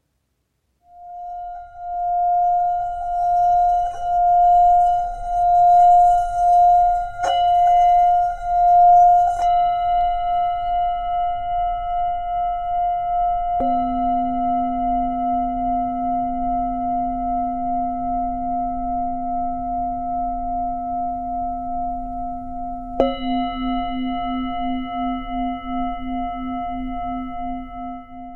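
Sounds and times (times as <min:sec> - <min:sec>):
brass Tibetan singing bowl ringing as a wooden mallet circles its rim: 0:00.8 - 0:28.3
deeper humming tones: 0:00.9 - 0:12.3.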